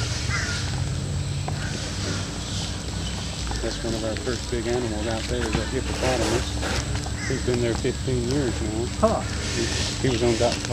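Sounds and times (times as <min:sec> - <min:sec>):
birds calling: 0:00.0 - 0:10.7
crow-like caw: 0:00.3 - 0:00.6, 0:01.6 - 0:02.4, 0:07.2 - 0:07.5
speech: 0:03.6 - 0:10.7.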